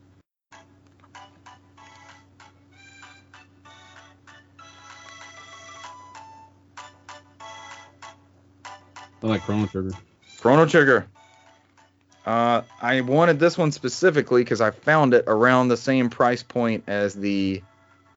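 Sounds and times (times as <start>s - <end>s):
steady low hum: 0.0s - 18.1s
tinny bright video game music from a handheld console's small speaker: 0.6s - 13.6s
speech: 9.2s - 11.2s, 12.2s - 17.7s.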